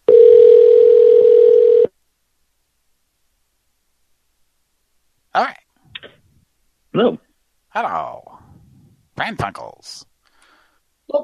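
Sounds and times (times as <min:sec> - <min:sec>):
telephone ring tone from a call to another line: 0:00.1 - 0:01.9
speech: 0:07.0 - 0:08.3, 0:09.2 - 0:10.1.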